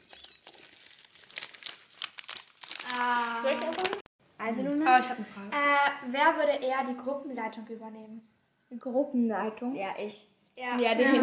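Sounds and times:
material rustling and crinkling: 0.0s - 4.1s
sharp crackles: 0.0s - 4.1s
speech: 4.5s - 11.2s
laughter: 11.0s - 11.2s.

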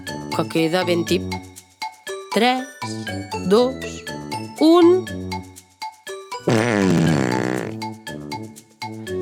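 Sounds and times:
speech: 0.4s - 1.5s, 2.3s - 5.2s
loud blaring cartoon fart sound effect of an ox farting: 6.5s - 7.8s.

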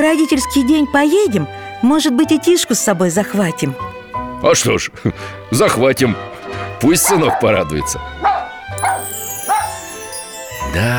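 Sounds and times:
speech: 0.0s - 8.3s, 10.7s - 10.9s
puppy yipping: 7.0s - 10.2s.

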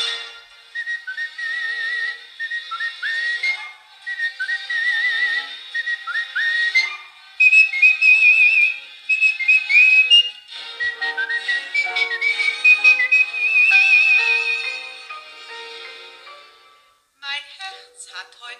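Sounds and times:
orchestral accompaniment: 0.0s - 0.9s, 6.6s - 17.0s
bright melodic whistling of a lively tune: 0.0s - 15.1s.

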